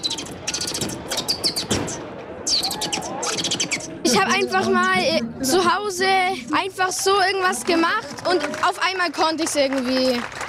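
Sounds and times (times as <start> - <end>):
schoolboy imitating sparrow chirps with pursed lips: 0.0 - 5.0
speech: 4.2 - 10.4.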